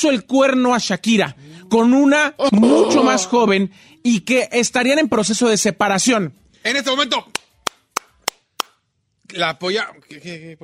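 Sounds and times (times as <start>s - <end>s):
speech: 0.0s - 7.4s, 9.3s - 10.6s
crisp hand claps: 7.3s - 8.8s.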